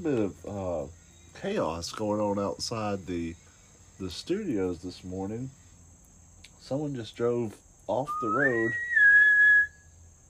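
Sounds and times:
speech: 0.0s - 3.4s, 4.0s - 5.6s, 6.6s - 8.9s
person whistling a single steady note: 8.1s - 9.8s.

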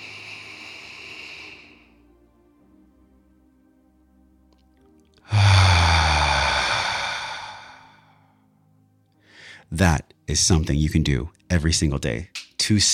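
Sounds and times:
long loud exhale: 0.0s - 1.9s, 5.3s - 8.2s
deep breath in through the nose: 0.0s - 2.0s, 5.3s - 8.4s, 9.2s - 9.7s
speech: 9.8s - 12.9s.

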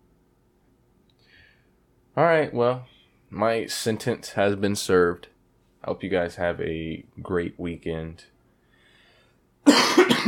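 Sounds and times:
speech: 2.2s - 8.3s
person with a rough hacking cough: 9.6s - 10.2s.

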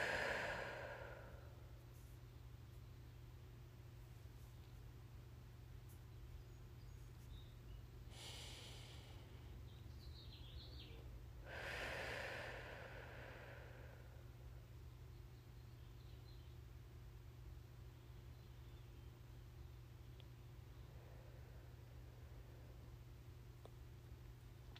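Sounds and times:
deep breath in and out during a guided meditation: 0.0s - 1.8s, 8.1s - 9.8s, 10.8s - 14.7s, 20.9s - 22.9s
faint steady hum: 0.0s - 24.7s.

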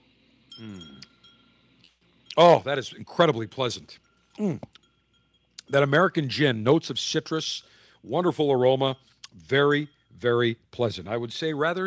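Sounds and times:
glasses of gin and tonic clinking in a toast: 0.5s - 1.6s, 2.2s - 7.6s
speech: 0.6s - 1.1s, 2.4s - 4.8s, 5.7s - 11.8s.

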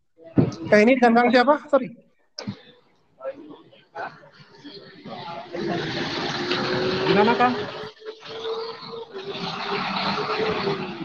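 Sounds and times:
speech: 0.5s - 2.0s, 5.1s - 7.8s
car passing outside: 4.2s - 11.0s.

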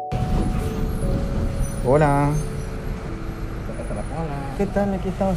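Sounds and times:
city bus engine and road noise rumbling inside a moving bus: 0.1s - 5.3s
speech: 1.9s - 2.5s, 4.6s - 5.3s.

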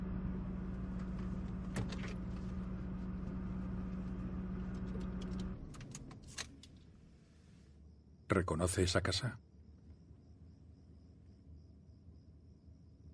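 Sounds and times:
car engine and road rumble driving through a neighbourhood and stopping: 0.0s - 7.9s
light clicks and rattles: 0.9s - 6.9s
speech: 8.3s - 9.5s.

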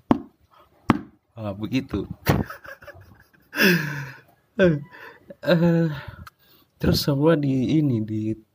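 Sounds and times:
knuckles rapping on a person's head: 0.1s - 1.2s
speech: 1.4s - 2.9s, 3.6s - 6.2s, 6.8s - 8.5s
laughter: 2.2s - 4.2s.

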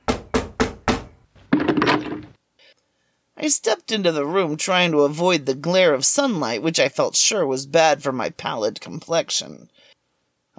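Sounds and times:
firm knocking on a wooden door: 0.0s - 2.2s
speech: 3.4s - 9.9s.

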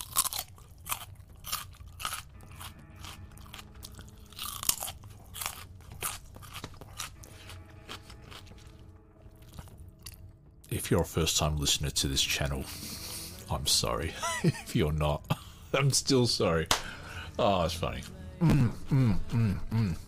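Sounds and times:
biting and chewing a raw carrot: 0.0s - 11.6s
speech: 10.9s - 15.2s, 15.8s - 16.8s, 17.4s - 20.0s.

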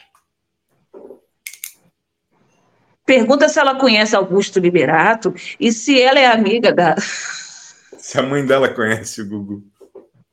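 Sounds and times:
pen being picked up with small clicks: 1.4s - 1.8s
speech: 3.1s - 7.4s, 8.0s - 9.7s.

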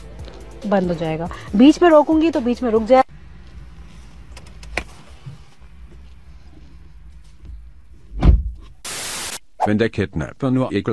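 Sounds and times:
speech: 0.6s - 3.0s, 9.7s - 10.9s
car automatic door mechanical hum: 3.0s - 9.6s
automatic car door shutting with a thud: 8.1s - 8.6s
bright hissing: 8.8s - 9.4s.

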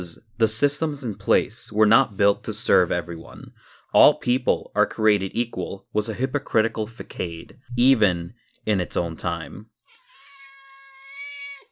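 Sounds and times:
speech: 0.0s - 9.7s
cat meowing: 9.9s - 11.7s.

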